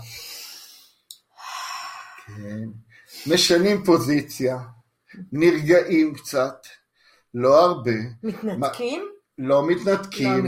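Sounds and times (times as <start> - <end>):
deep breath with long airy inhale and breathy exhale: 0.0 - 3.5
speech: 2.3 - 10.4.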